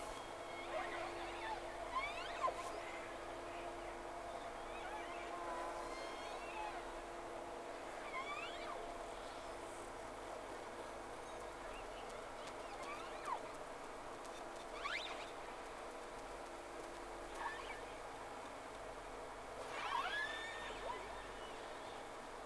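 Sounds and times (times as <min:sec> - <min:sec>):
steady low hum and hiss: 0:00.0 - 0:22.4
whale calls with tonal sweeps and rising squeals: 0:00.4 - 0:03.0, 0:04.5 - 0:07.0, 0:08.0 - 0:09.4, 0:14.8 - 0:15.3, 0:17.3 - 0:17.9, 0:19.7 - 0:22.0.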